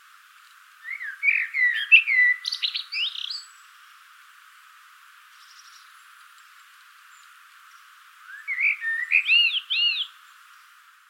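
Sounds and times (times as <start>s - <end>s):
common blackbird Turdus merula singing a fluty warble: 0.8s - 3.6s, 8.2s - 10.2s.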